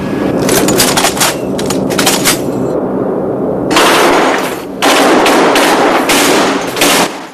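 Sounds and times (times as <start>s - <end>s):
low droning bomber engine rumble: 0.0s - 7.2s
bomber's heavy machine guns test firing: 3.7s - 7.3s.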